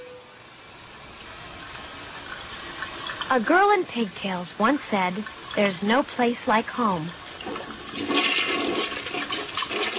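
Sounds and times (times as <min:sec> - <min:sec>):
home toilet flushing: 0:00.8 - 0:09.9
speech: 0:03.3 - 0:07.2.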